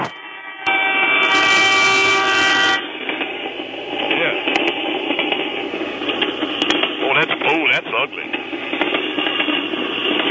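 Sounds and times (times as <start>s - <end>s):
train rushing past on the tracks: 0.0s - 10.3s
horn-like tonal blasts: 0.6s - 2.9s.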